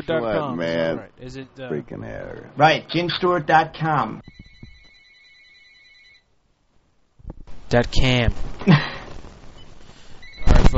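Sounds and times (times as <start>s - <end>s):
speech: 0.0s - 4.4s, 7.7s - 8.9s
faint room noise: 0.0s - 10.7s
telephone ringing with an electronic tone: 4.2s - 6.3s.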